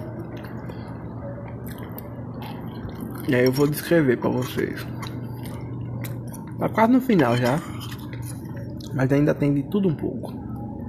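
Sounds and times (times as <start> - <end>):
person chewing mashed potato with skins: 0.2 - 6.8, 7.4 - 9.0
speech: 3.2 - 5.0, 6.6 - 7.7, 9.0 - 10.4.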